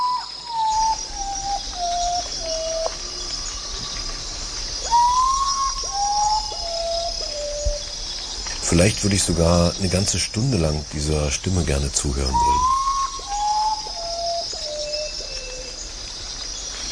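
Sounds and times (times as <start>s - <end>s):
common potoo giving eerie mournful whistled call: 0.0s - 3.8s, 4.8s - 7.9s, 12.2s - 15.8s
steady hiss of night insects: 0.0s - 16.8s
speech: 8.8s - 12.8s.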